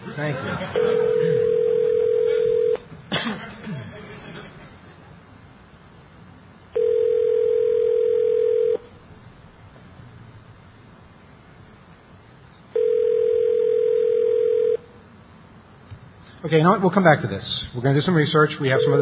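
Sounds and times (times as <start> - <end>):
laughter: 0.0 - 1.7, 3.3 - 5.2
speech: 0.2 - 1.6, 16.5 - 19.0
telephone ringback tone over the line: 0.8 - 2.8, 6.8 - 8.8, 12.8 - 14.8, 18.7 - 19.0.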